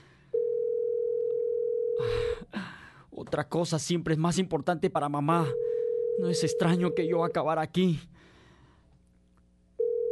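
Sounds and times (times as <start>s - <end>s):
steady single-pitched telephone dial tone after an unanswered call: 0.4s - 2.0s, 5.6s - 7.2s, 9.8s - 10.1s
speech: 3.3s - 8.1s.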